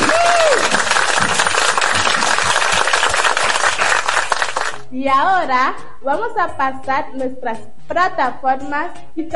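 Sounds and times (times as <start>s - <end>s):
person cheering or whooping: 0.0s - 0.9s
audience applause: 0.0s - 4.8s
speech: 5.0s - 9.3s.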